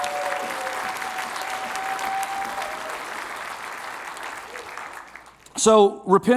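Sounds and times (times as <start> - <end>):
congregation applauding: 0.0 - 5.6
speech: 5.6 - 6.3.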